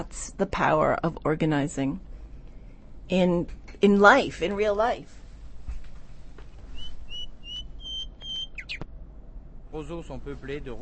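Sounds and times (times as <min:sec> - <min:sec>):
speech: 0:00.0 - 0:02.1, 0:03.1 - 0:05.2, 0:09.7 - 0:10.8
steady low hum: 0:00.0 - 0:10.8
pet birds chirping and whistling: 0:06.7 - 0:08.8.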